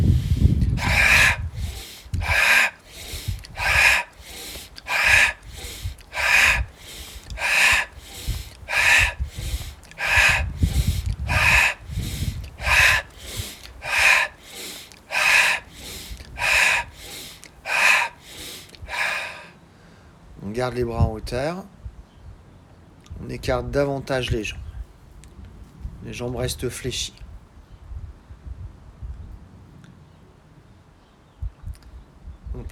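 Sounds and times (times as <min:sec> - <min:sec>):
deep breathing in and out during a yoga exercise: 0:00.0 - 0:19.5
speech: 0:20.6 - 0:21.8, 0:23.3 - 0:24.6, 0:26.0 - 0:27.2.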